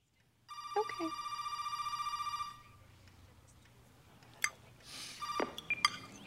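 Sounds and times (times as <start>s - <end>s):
landline telephone bell ringing: 0.5s - 2.8s, 5.2s - 5.8s
speech: 1.0s - 1.3s.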